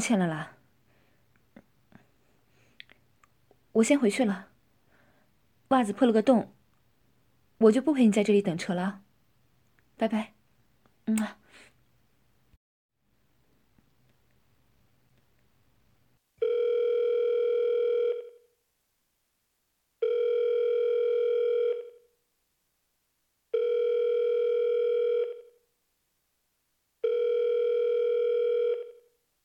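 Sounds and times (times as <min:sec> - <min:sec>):
speech: 0:00.0 - 0:00.6, 0:03.8 - 0:04.5, 0:05.7 - 0:06.6, 0:07.6 - 0:09.0, 0:10.0 - 0:10.4, 0:11.1 - 0:11.4
phone ringback tone: 0:16.4 - 0:18.5, 0:20.0 - 0:22.1, 0:23.5 - 0:25.6, 0:27.0 - 0:29.2.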